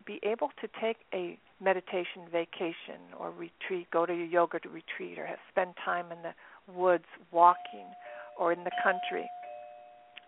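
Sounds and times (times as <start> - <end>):
speech: 0.1 - 9.4
doorbell chime: 7.6 - 10.2.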